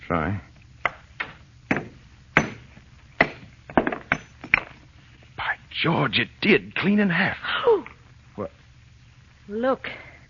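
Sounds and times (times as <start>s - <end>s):
speech: 0.1s - 0.5s, 5.8s - 8.6s, 9.5s - 10.1s
hammer striking and breaking a stone: 0.8s - 4.7s.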